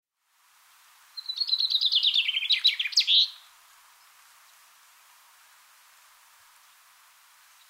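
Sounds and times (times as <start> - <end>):
common chaffinch Fringilla coelebs singing: 1.2 - 4.6.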